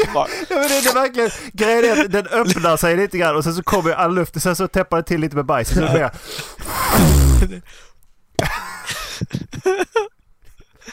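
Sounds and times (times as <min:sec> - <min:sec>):
speech: 0:00.1 - 0:08.6, 0:09.2 - 0:10.1
voice making a raspy squeaking fart imitation: 0:06.6 - 0:07.6
laughter: 0:08.4 - 0:10.1.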